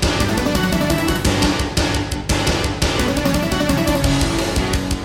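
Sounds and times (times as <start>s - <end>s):
synthesizer module intro music in GM2 mode: 0.1s - 1.9s, 2.9s - 4.9s.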